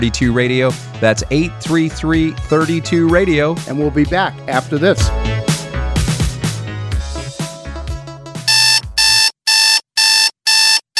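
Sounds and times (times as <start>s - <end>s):
speech: 0.0s - 5.4s
music with beats: 0.0s - 9.0s
alarm clock ringing as a wake-up call: 8.5s - 10.9s.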